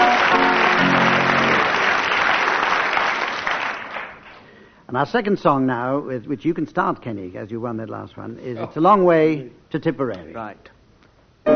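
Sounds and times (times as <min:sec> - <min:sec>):
crowd clapping: 0:00.0 - 0:04.5
speech: 0:04.9 - 0:10.8.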